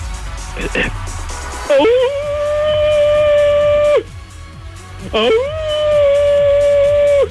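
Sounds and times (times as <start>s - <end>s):
person imitating a wolf howl to warm up the voice: 1.7s - 4.0s, 5.0s - 7.2s.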